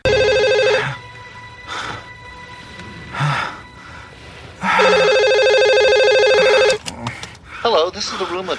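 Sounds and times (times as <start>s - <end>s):
telephone ringing: 0.0s - 1.0s, 4.6s - 6.8s
speech: 7.9s - 8.5s.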